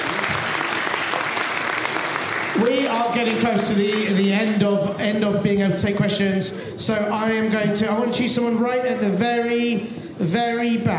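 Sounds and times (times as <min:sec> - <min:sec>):
room full of people clapping: 0:00.0 - 0:05.2
speech: 0:02.6 - 0:10.9.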